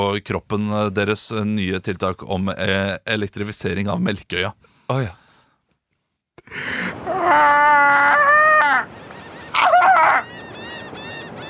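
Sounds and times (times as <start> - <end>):
speech: 0.0 - 5.2, 6.4 - 9.0
seagulls screeching: 6.9 - 11.4.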